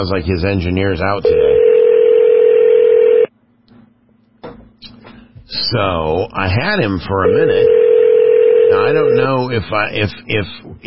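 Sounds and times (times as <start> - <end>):
speech: 0.0 - 1.6, 5.5 - 7.8, 8.7 - 10.8
telephone dialing a call: 1.3 - 3.3, 7.6 - 9.2.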